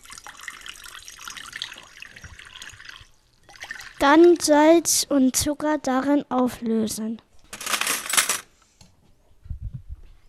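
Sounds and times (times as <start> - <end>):
lukewarm water pouring into a large bowl: 0.0 - 4.5
speech: 4.0 - 7.3.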